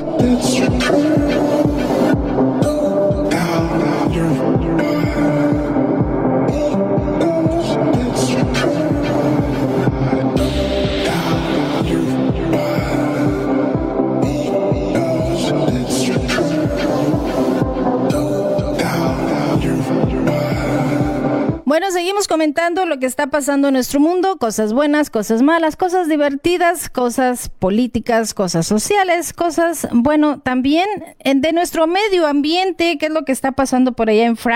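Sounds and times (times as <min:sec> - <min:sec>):
catchy song with thumping beat and layered instruments: 0:00.0 - 0:21.7
speech: 0:22.7 - 0:34.5.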